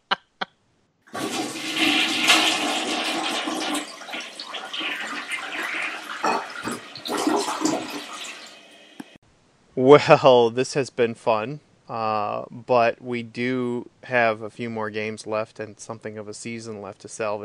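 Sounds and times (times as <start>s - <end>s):
toilet flush swirling and gurgling: 1.1s - 9.2s
speech: 9.8s - 17.4s.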